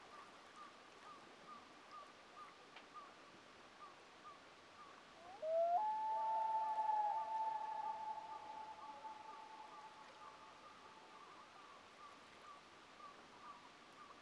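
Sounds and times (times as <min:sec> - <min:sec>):
quiet hiss: 0:00.0 - 0:14.2
common loons wailing in a duet: 0:05.4 - 0:10.2.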